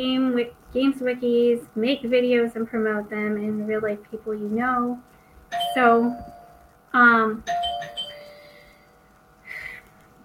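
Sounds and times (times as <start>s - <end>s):
speech: 0.0s - 6.3s, 6.9s - 8.0s
household doorbell ringing with two bright chimes: 5.5s - 6.6s, 7.5s - 8.8s.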